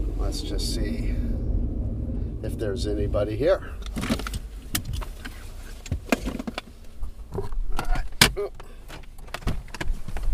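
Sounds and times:
low car engine rumble pulling up to a garage and parking: 0:00.0 - 0:10.3
speech: 0:00.3 - 0:01.4, 0:02.4 - 0:04.2
clicks, clunks and rattles: 0:03.8 - 0:10.3.

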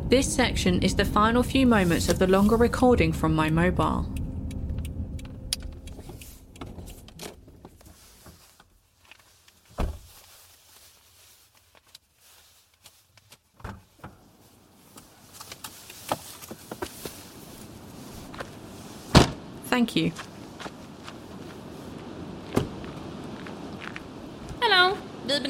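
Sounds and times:
steady engine-like hum: 0:00.0 - 0:07.8
speech: 0:00.1 - 0:04.2, 0:19.8 - 0:20.3
rustling and clicks: 0:04.8 - 0:14.2, 0:14.9 - 0:18.6
shuffling steps of person stepping away from car: 0:06.0 - 0:19.1, 0:19.7 - 0:25.1
sharp car door thud: 0:09.8 - 0:10.1, 0:19.1 - 0:19.4, 0:22.5 - 0:22.8.

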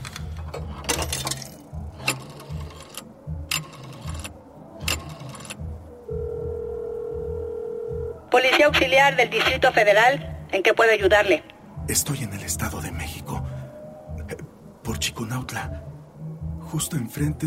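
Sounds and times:
telephone dial tone: 0:02.0 - 0:08.2
speech: 0:08.4 - 0:12.7, 0:15.2 - 0:15.9, 0:16.7 - 0:17.4.

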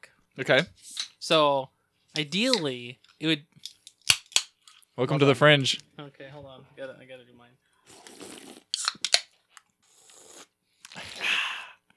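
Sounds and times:
speech: 0:00.4 - 0:03.5, 0:05.0 - 0:08.5
slurping a drink: 0:07.8 - 0:09.1, 0:09.8 - 0:11.4
sharp mouth clicks: 0:07.9 - 0:09.2.

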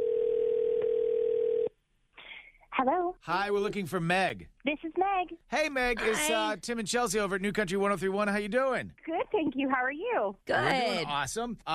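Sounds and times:
phone ringback tone: 0:00.0 - 0:01.7
speech: 0:02.8 - 0:11.7.

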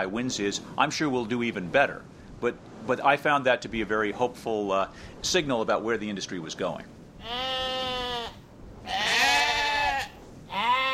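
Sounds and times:
speech: 0:00.0 - 0:07.5
sheep bleating: 0:07.2 - 0:10.9.

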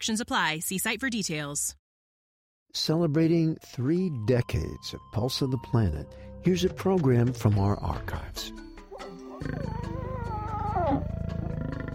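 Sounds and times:
speech: 0:00.0 - 0:01.8, 0:02.7 - 0:08.6, 0:09.4 - 0:09.9, 0:10.8 - 0:11.2
African lion roaring: 0:09.4 - 0:11.9.

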